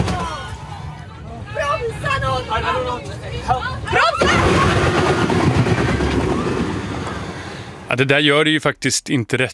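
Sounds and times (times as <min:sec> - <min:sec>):
agitated voices shouting: 0:00.0 - 0:05.4
rumbling vehicle noise: 0:00.0 - 0:08.5
speech: 0:02.4 - 0:05.3, 0:07.9 - 0:09.5
bus crashing into a wire rope barrier: 0:04.0 - 0:07.8
harsh grinding roar of a bus against a wire rope barrier: 0:04.2 - 0:07.9.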